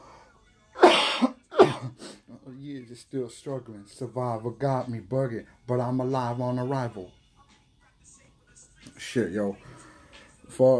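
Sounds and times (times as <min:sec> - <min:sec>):
person coughing harshly: 0:00.8 - 0:02.2
speech: 0:01.8 - 0:07.2, 0:09.0 - 0:09.8, 0:10.5 - 0:10.7.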